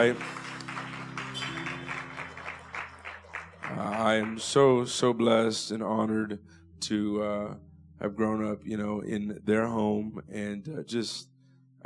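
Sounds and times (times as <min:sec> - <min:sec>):
speech: 0:00.0 - 0:00.4, 0:03.7 - 0:11.8
audience clapping: 0:00.0 - 0:04.7
low sustained musical tones: 0:00.0 - 0:11.8.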